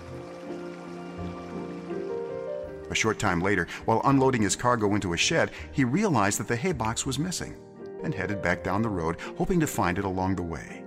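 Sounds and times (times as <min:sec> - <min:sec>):
flowing creek water: 0:00.0 - 0:03.1
speech: 0:02.9 - 0:10.8.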